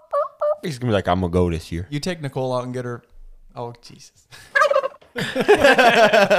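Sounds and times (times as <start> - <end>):
person imitating a turkey gobble with his voice for turkey calling: 0.0 - 0.6, 4.6 - 5.0
speech: 0.6 - 4.6, 5.2 - 6.3
laughter: 5.1 - 6.3.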